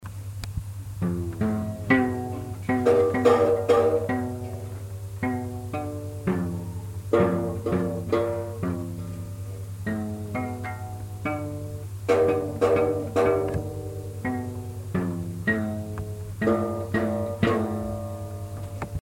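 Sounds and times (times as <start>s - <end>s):
guitar: 0.4s - 18.9s.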